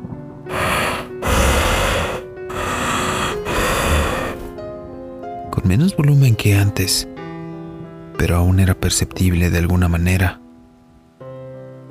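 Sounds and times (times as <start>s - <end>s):
heavy raspy breathing: 0.5s - 4.6s
speech: 5.6s - 7.1s, 8.2s - 10.4s.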